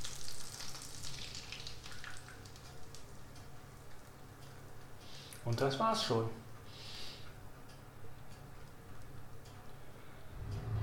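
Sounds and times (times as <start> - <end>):
batter poured into a pan of melted butter sizzling: 0.0 - 3.3
speech: 5.4 - 6.4.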